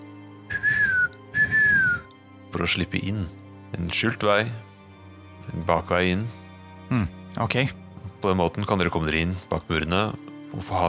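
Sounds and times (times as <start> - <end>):
person whistling a bird call: 0.5 - 2.1
speech: 2.5 - 4.7, 5.4 - 10.8.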